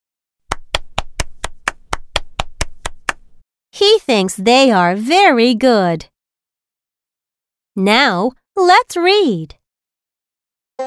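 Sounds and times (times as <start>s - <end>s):
hand claps: 0.5s - 3.3s
speech: 3.8s - 6.1s, 7.8s - 9.6s.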